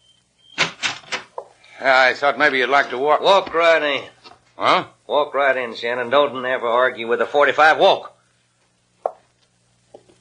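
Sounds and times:
door being opened: 0:00.5 - 0:01.5
speech: 0:01.8 - 0:08.1.

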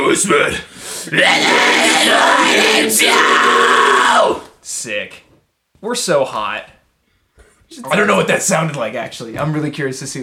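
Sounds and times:
speech: 0:00.1 - 0:05.2, 0:05.8 - 0:06.8, 0:07.7 - 0:10.2
higher raspy vocal fry scream: 0:01.1 - 0:04.6.

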